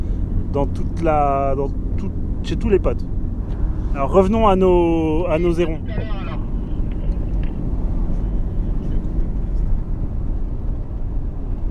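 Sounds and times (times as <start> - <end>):
car road and engine noise heard from inside the cabin: 0.0 - 11.6
speech: 0.5 - 3.2, 3.9 - 6.2.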